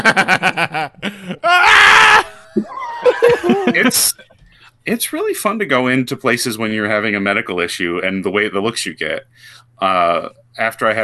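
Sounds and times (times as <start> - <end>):
laughter and snickering from others: 0.0 - 1.4, 3.0 - 4.4
speech: 0.0 - 1.4, 3.6 - 4.2, 4.8 - 11.0
person imitating a giant man screaming in pain: 1.4 - 3.9.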